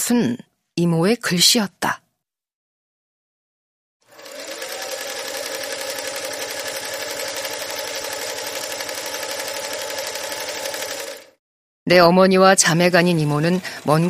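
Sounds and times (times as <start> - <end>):
speech: 0.1 - 2.0, 11.9 - 14.0
electric sewing machine stitching with a constant motor hum: 4.0 - 11.4.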